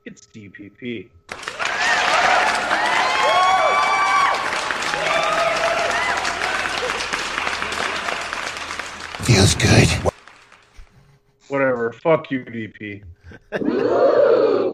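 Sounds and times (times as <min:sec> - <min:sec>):
speech: 0:00.1 - 0:01.3, 0:09.3 - 0:10.1, 0:12.0 - 0:14.7
crowd applause sound effect with whoops and cheers: 0:01.3 - 0:10.2.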